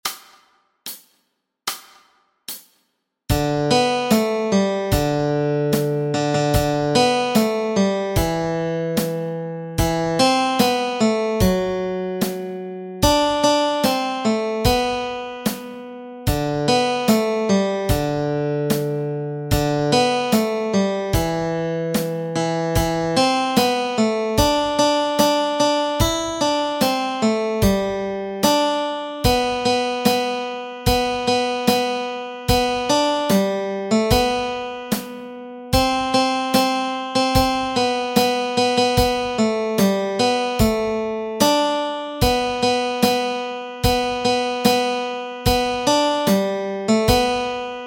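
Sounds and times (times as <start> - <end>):
melody: 3.3 - 47.8.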